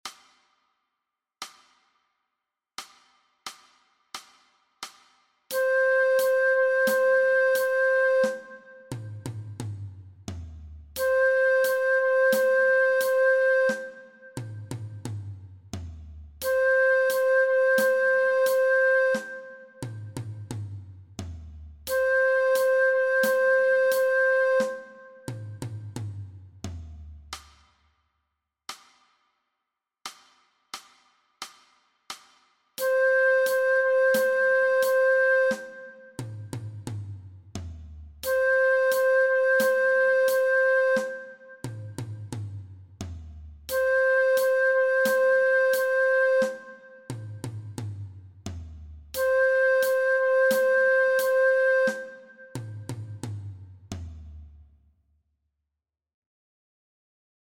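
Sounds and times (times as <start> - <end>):
transverse flute play-along track: 5.5 - 9.5, 11.0 - 15.0, 16.4 - 20.5, 21.9 - 25.9, 32.8 - 36.8, 38.2 - 42.3, 43.7 - 47.7, 49.2 - 53.4.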